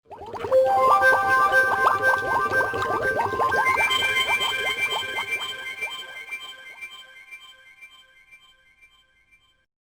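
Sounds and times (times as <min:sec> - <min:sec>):
bubble phone ringtone: 0:00.5 - 0:05.4.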